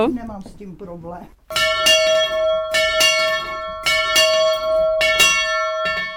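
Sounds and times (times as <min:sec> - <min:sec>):
speech: 0:00.0 - 0:02.4
small chapel death-knell bell ringing in Letohrad: 0:01.5 - 0:06.1.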